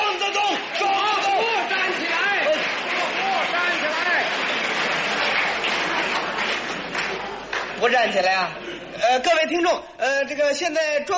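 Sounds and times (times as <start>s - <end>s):
stadium crowd cheering after a table tennis win: 0.0s - 8.3s
speech: 7.8s - 11.1s.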